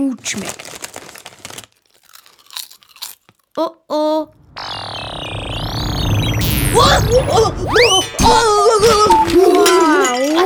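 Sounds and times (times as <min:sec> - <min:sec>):
speech: 0:00.0 - 0:00.8, 0:03.6 - 0:04.4, 0:06.8 - 0:10.3
crunching salty, fatty potato chips being chewed: 0:00.0 - 0:03.7.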